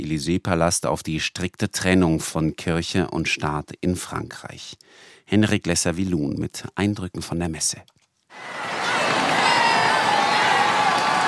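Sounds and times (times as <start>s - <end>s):
speech: 0.0s - 8.6s
high cries: 8.3s - 11.2s
large crowd of worshippers roaring and shouting with excitement: 8.3s - 11.2s.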